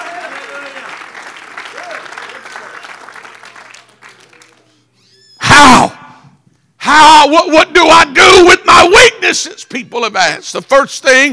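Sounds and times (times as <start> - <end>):
audience applauding: 0.0 - 4.8
speech: 7.0 - 11.3.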